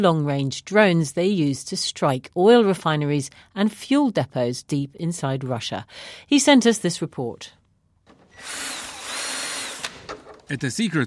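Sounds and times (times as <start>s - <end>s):
speech: 0.0s - 7.6s, 10.5s - 11.0s
power drill boring into drone parts in a drone workshop: 8.1s - 10.5s.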